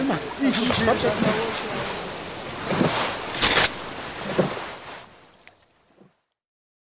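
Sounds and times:
boat speeding through ocean waves: 0:00.0 - 0:05.3
water splashing: 0:00.0 - 0:06.3
speech: 0:00.1 - 0:01.7.

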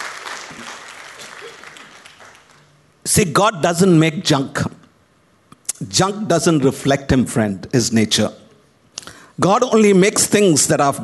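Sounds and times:
audience applause as a clap offering to God: 0:00.0 - 0:02.7
speech: 0:03.2 - 0:04.7, 0:06.0 - 0:08.4, 0:09.4 - 0:11.0.

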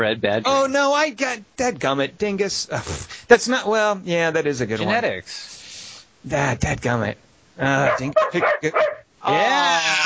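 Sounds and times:
speech: 0:00.0 - 0:05.6, 0:06.2 - 0:10.0
dog barking: 0:07.8 - 0:09.1
dog whimpering: 0:07.9 - 0:09.0.

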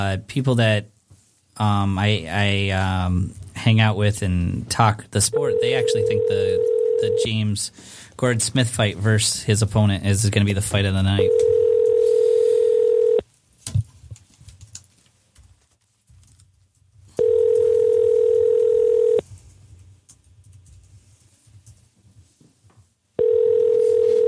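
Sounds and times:
speech: 0:00.0 - 0:00.9, 0:01.6 - 0:11.6
telephone ringback tone while waiting for an answer: 0:05.3 - 0:07.2, 0:11.2 - 0:13.2, 0:17.2 - 0:19.2, 0:23.2 - 0:24.2.

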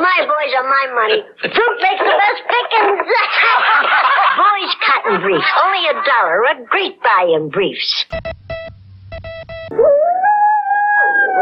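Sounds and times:
speech: 0:00.6 - 0:08.4
laughter: 0:01.5 - 0:06.3
husky dogs howling: 0:09.7 - 0:11.3.

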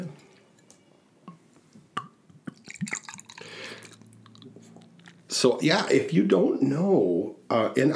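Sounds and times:
Driftless Brewing Company beer pouring into a glass: 0:02.0 - 0:04.5
speech: 0:05.4 - 0:07.9.

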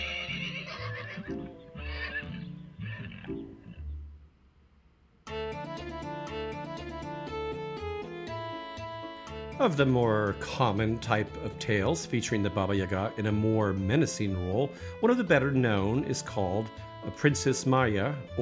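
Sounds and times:
horse neighing: 0:00.0 - 0:03.8
bright instrumental music: 0:00.0 - 0:04.0, 0:05.3 - 0:18.4
speech: 0:09.6 - 0:18.4.

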